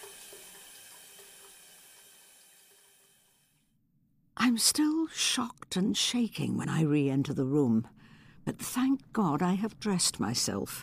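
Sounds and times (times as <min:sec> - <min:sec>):
shower water running: 0:00.0 - 0:03.2
speech: 0:04.5 - 0:10.8.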